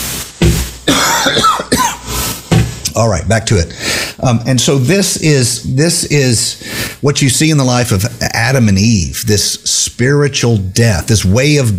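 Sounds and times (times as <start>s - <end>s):
person coughing harshly: 0.8s - 2.2s
speech: 3.0s - 11.7s.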